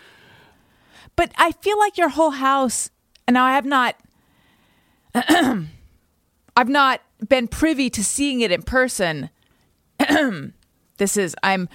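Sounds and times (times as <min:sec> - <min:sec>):
speech: 0:01.2 - 0:04.0, 0:05.2 - 0:05.8, 0:06.6 - 0:09.4, 0:10.1 - 0:11.7
person pointedly clearing throat: 0:05.2 - 0:05.8, 0:10.0 - 0:10.5.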